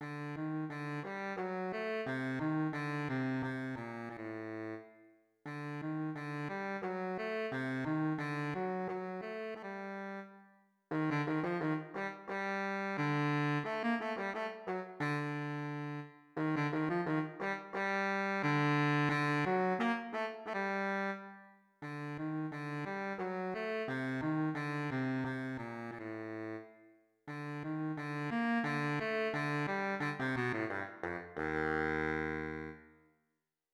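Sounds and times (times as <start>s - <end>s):
baritone saxophone: 0.0s - 4.9s, 5.5s - 10.3s, 10.9s - 32.8s.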